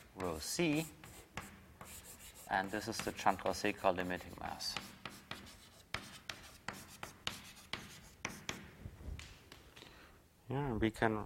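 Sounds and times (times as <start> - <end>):
handwriting scratching strokes on a surface: 0.0 - 8.8
speech: 0.2 - 1.0, 2.5 - 4.9, 10.5 - 11.2.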